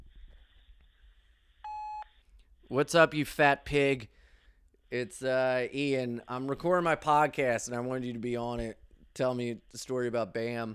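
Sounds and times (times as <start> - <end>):
voicemail prompt beep before a message is left: 1.6 - 2.1
speech: 2.7 - 4.2, 4.9 - 10.7.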